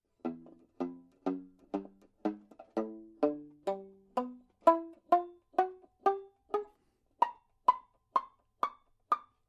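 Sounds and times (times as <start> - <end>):
banjo pizzicato: 0.0 - 9.4.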